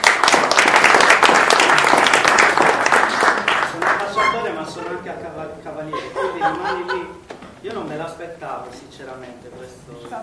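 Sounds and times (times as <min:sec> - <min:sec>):
crowd of many hands clapping: 0:00.0 - 0:04.4
speech: 0:05.0 - 0:10.2
laughter: 0:05.8 - 0:07.2.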